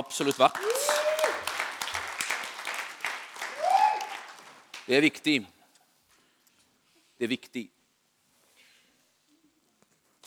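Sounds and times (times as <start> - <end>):
crowd applauding worship team: 0.0 - 5.2
speech: 0.1 - 1.4, 4.9 - 5.6, 7.2 - 7.8
voices calling out and cheering: 0.2 - 2.8, 3.4 - 4.5.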